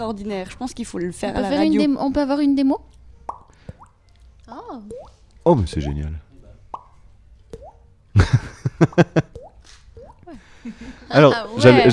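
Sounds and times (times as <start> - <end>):
speech: 0.0 - 3.0, 4.5 - 6.2, 8.8 - 9.4, 10.3 - 11.9
popping saliva bubbles blown with the mouth: 3.2 - 5.2, 6.7 - 7.8.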